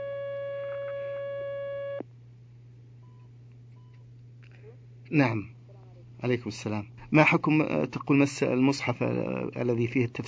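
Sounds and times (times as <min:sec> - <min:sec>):
telephone line tone while connecting a call: 0:00.0 - 0:02.0
speech: 0:05.1 - 0:05.6, 0:06.2 - 0:10.2.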